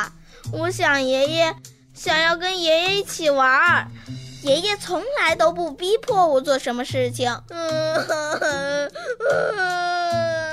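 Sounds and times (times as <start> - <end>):
speech: 0.0 - 10.3
young girl crying: 7.5 - 10.5.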